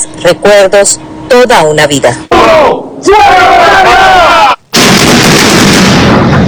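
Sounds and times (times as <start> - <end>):
speech: 0.2 - 4.4
excited crowd shouting and cheering: 2.3 - 4.6
controlled demolition explosion of a building: 4.7 - 6.4.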